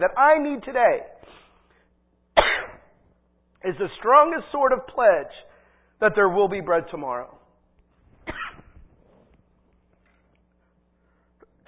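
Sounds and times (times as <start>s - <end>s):
speech: 0.0s - 1.4s, 3.6s - 7.4s
person coughing during a sermon: 2.4s - 2.9s, 8.2s - 8.8s.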